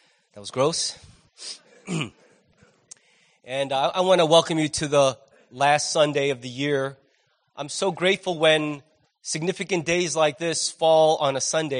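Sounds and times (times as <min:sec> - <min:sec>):
speech: 0:00.4 - 0:02.2, 0:03.4 - 0:07.0, 0:07.6 - 0:11.7
person clearing throat after swallowing a cough drop: 0:01.5 - 0:02.8.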